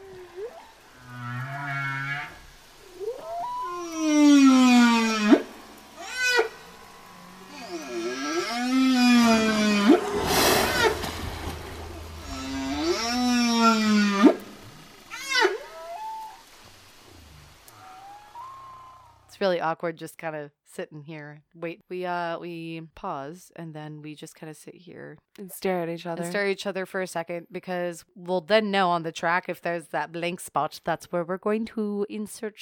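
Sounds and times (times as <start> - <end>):
blue whale call of long sweeping tonal moans: 0.0 - 19.3
faint watery noise: 0.0 - 19.3
speech: 19.4 - 32.5.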